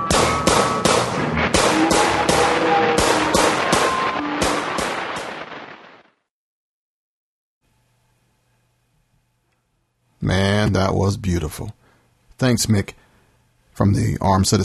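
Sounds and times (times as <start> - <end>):
loud sharp gunshots: 0.1 - 6.1
speech: 10.7 - 11.8, 12.4 - 13.0, 13.8 - 14.6.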